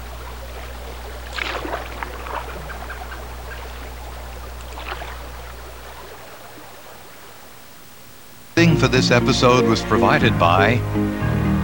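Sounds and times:
canoe paddle strokes on a tree-lined river: 0.0 - 7.5
steady low hum: 0.0 - 11.6
speech: 8.8 - 11.4.

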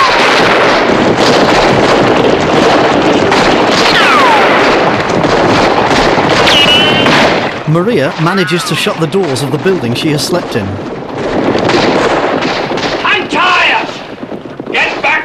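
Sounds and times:
dense gunfire from charging bandits and a posse shooting back: 0.0 - 15.2
descending whistling tones: 6.5 - 7.1
speech: 7.7 - 11.0.

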